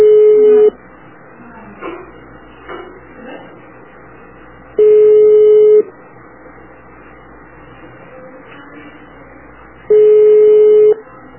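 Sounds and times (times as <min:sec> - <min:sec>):
telephone ringback tone of an unanswered call: 0:00.0 - 0:00.8, 0:04.8 - 0:05.9, 0:09.9 - 0:11.0.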